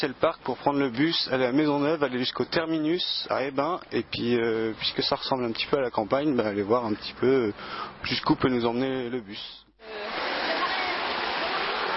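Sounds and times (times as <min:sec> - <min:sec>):
speech: 0:00.0 - 0:10.0
rushing water from a small countryside stream: 0:09.8 - 0:11.9.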